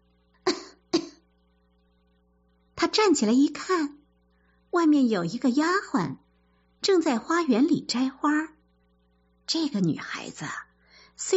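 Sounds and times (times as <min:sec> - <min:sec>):
young woman coughing: 0:00.5 - 0:01.2
speech: 0:02.9 - 0:04.0, 0:04.7 - 0:06.2, 0:06.8 - 0:08.6, 0:09.5 - 0:11.3.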